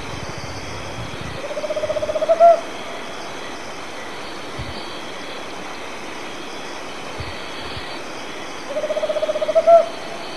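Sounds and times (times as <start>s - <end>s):
Tropical Screech-Owl giving purring trills in Argentina: 0.2s - 3.2s, 8.7s - 10.2s.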